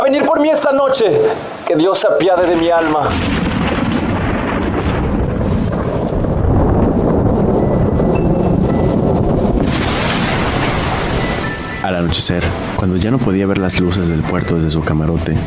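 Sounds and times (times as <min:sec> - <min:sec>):
gusting wind: 0:00.0 - 0:15.4
speech: 0:00.1 - 0:03.7, 0:11.9 - 0:15.4
rough sea waves crashing around a ship at nightfall: 0:02.4 - 0:13.4.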